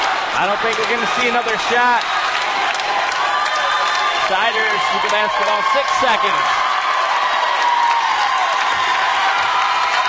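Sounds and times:
crowd ovation with dense applause: 0.0s - 10.0s
speech: 0.4s - 2.2s, 4.3s - 6.6s
high whoops: 3.1s - 10.0s.

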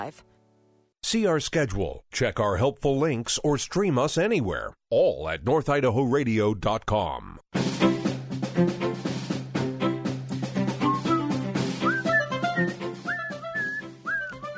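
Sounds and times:
speech: 0.0s - 0.4s, 1.1s - 7.8s
steady music: 7.6s - 14.5s
person whistling a short gliding melody: 10.8s - 14.5s.

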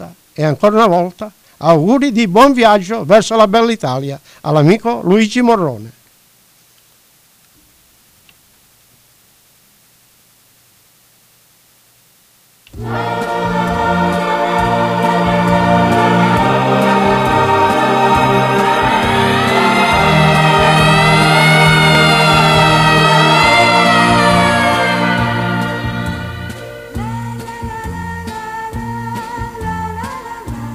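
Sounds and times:
speech: 0.4s - 6.0s
steady full musical backdrop: 12.7s - 30.7s
distant wailing emergency siren: 17.0s - 26.8s.

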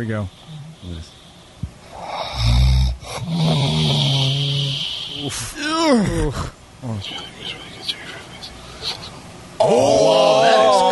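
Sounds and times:
speech: 0.0s - 1.2s, 5.2s - 8.0s, 8.8s - 9.0s, 9.6s - 10.7s
person snoring heavily: 1.9s - 5.3s
loud rough snort on jolting awake: 2.0s - 4.9s.

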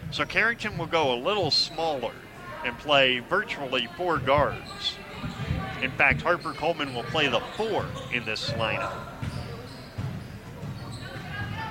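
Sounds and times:
crowd noise: 0.0s - 11.7s
speech: 0.1s - 9.1s
basketball dribbled on a court during a women's game: 4.1s - 11.7s.

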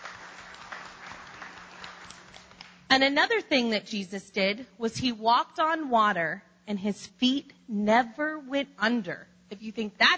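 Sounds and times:
audience clapping at a children's church talk: 0.0s - 2.8s
speech: 2.9s - 10.1s.

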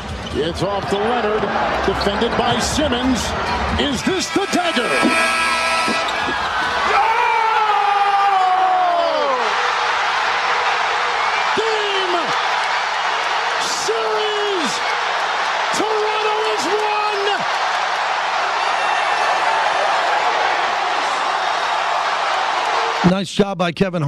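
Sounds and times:
speech: 0.4s - 6.0s, 23.2s - 24.0s
huge arena crowd in Toronto cheering after a game-winning basketball shot: 0.4s - 23.2s
shouts or horn-like calls from the crowd: 4.0s - 6.9s.

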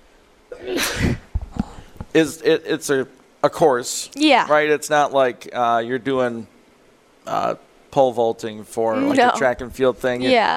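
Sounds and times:
person sneezing: 0.5s - 1.2s
speech: 0.6s - 1.2s, 2.1s - 6.5s, 7.2s - 10.5s.

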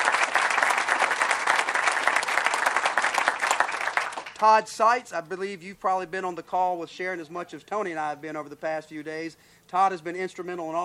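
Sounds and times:
applause from a sizable audience: 0.0s - 4.4s
speech: 4.4s - 10.8s.

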